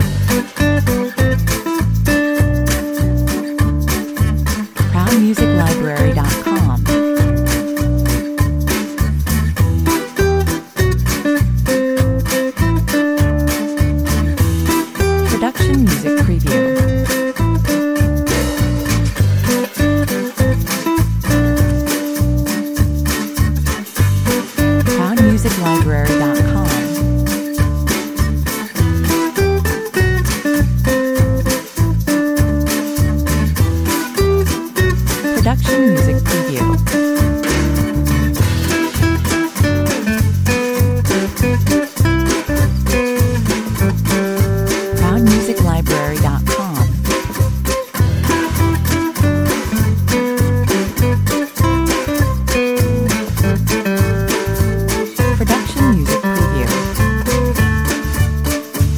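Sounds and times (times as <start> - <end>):
guitar family playing at 100 bpm: 0.0 - 58.9.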